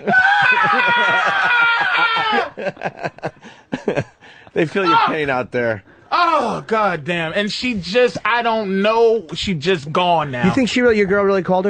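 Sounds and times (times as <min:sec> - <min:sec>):
speech: 0:00.0 - 0:00.3, 0:02.0 - 0:11.6
person screaming: 0:00.0 - 0:02.6, 0:04.8 - 0:05.2, 0:06.1 - 0:06.6
laughter: 0:00.0 - 0:05.0.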